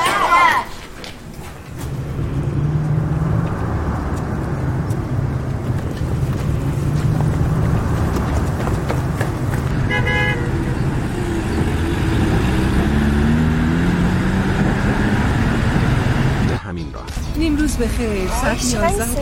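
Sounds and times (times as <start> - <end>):
voices: 0.0 - 1.2, 16.6 - 19.1
road traffic and car engines rumbling: 0.0 - 19.1.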